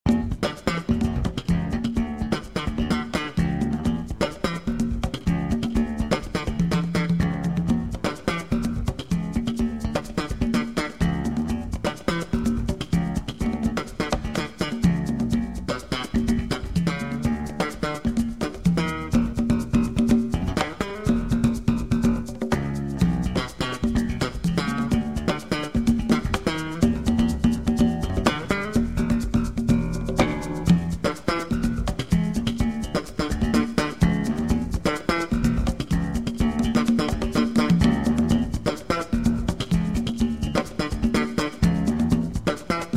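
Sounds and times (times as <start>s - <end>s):
conga bass tones: 0.0s - 42.9s.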